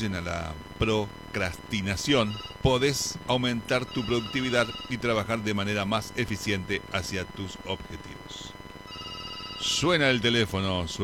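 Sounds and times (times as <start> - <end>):
speech: 0.0 - 8.6, 9.6 - 11.0
faint steady high tone: 0.0 - 11.0
voice imitating a ringing telephone: 2.0 - 5.6, 8.9 - 10.5.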